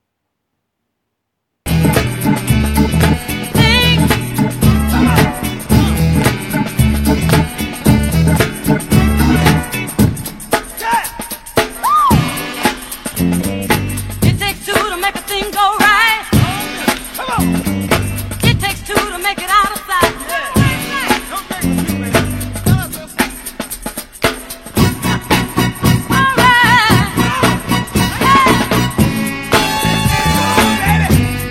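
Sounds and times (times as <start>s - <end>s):
instruments woven through the beat: 1.7s - 14.2s, 24.8s - 31.4s
funky drum break with crisp snare and kicks: 1.7s - 31.4s.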